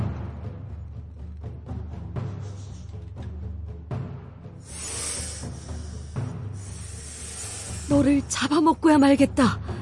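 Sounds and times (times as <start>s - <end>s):
low steady musical bed: 0.0s - 9.8s
snake hissing: 4.5s - 8.4s
speech: 7.9s - 9.6s.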